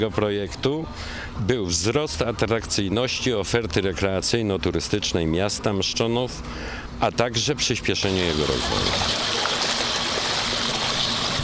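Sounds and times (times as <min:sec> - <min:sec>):
speech: 0:00.0 - 0:09.4
water rushing through an artificial river channel driven by turbine nozzles: 0:08.0 - 0:11.4.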